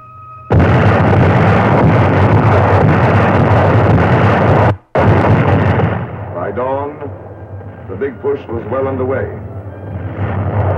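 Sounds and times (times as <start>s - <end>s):
Allied artillery guns firing at night along the front in Italy: 0.5s - 7.2s
speech: 8.0s - 9.4s.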